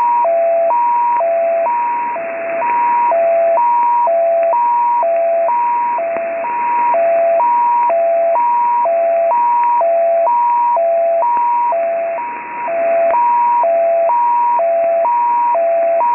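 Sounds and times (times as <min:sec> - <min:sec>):
mysterious Spanish FSK radio signal on 28245.82 kHz: 0:00.0 - 0:16.1.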